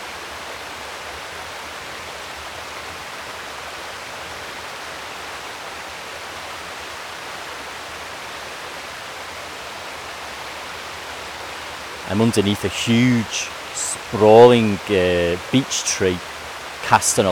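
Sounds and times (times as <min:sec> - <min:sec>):
low river water flowing beneath a beech tree in summer: 0:00.0 - 0:17.2
speech: 0:12.1 - 0:16.3, 0:16.9 - 0:17.2.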